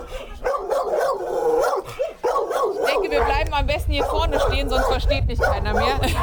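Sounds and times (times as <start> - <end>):
dogs barking and yelping in dog runs in a backyard: 0.0 - 6.2
speech: 3.5 - 6.2.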